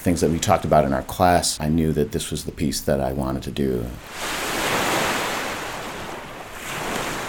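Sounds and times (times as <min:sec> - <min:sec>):
speech: 0:00.0 - 0:04.6
lake waves crashing against a shore: 0:04.0 - 0:07.2.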